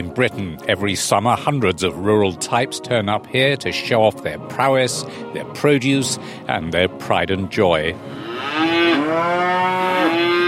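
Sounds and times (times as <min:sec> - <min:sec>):
speech: 0:00.0 - 0:09.3
prize cattle mooing in the cattle tent of a farm show: 0:08.1 - 0:10.4.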